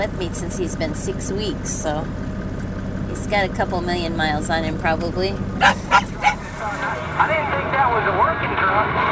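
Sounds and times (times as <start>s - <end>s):
speech: 0.0s - 2.3s, 3.2s - 9.1s
steady low truck engine rumble: 0.0s - 9.1s
12-year-old miniature schnauzer barking in a truck: 5.6s - 7.2s.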